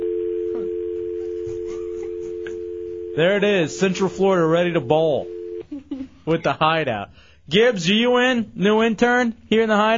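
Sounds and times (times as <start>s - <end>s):
telephone dial tone: 0.0s - 3.9s, 5.1s - 5.7s
speech: 3.2s - 5.4s, 6.3s - 9.9s.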